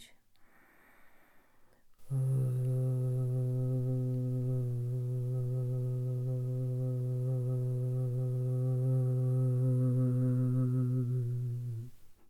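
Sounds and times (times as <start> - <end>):
low hum: 2.0 - 12.0.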